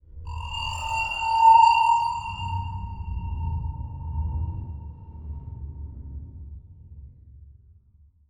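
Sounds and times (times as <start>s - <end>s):
eerie crystal title transition sound: 0.2s - 5.6s.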